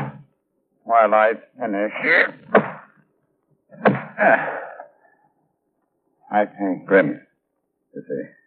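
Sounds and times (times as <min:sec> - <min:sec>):
speech: 0:01.0 - 0:02.5, 0:03.7 - 0:04.6, 0:06.3 - 0:07.3, 0:07.9 - 0:08.4
door thumping shut: 0:02.5 - 0:02.9.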